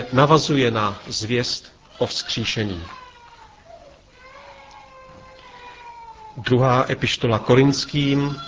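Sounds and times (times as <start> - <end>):
low hum: 0.0 - 8.4
speech: 0.1 - 3.0, 6.4 - 8.4
baby crying in a large room: 1.9 - 6.7, 7.9 - 8.4.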